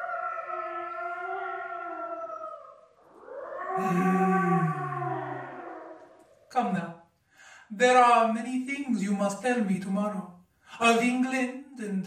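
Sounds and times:
several wolves howling together: 0:00.0 - 0:06.5
speech: 0:03.8 - 0:04.6, 0:06.6 - 0:06.9, 0:07.8 - 0:12.0.

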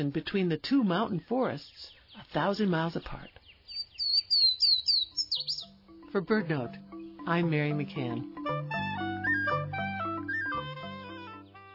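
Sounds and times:
speech: 0:00.0 - 0:03.4, 0:06.1 - 0:08.7
high thin warbler song of rapid buzzy trills and sliding notes: 0:00.0 - 0:11.7.

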